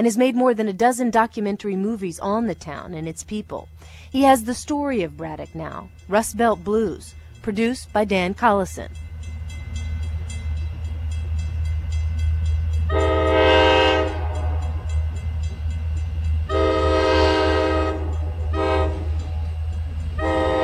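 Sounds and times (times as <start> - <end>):
speech: 0.0 - 9.0
low continuous roll of railcars: 1.0 - 20.6
train rumbling along railroad tracks by the Mon River in Braddock: 1.1 - 20.6
loud harmonic train horn blasts: 12.8 - 15.4, 16.4 - 19.6, 20.2 - 20.6.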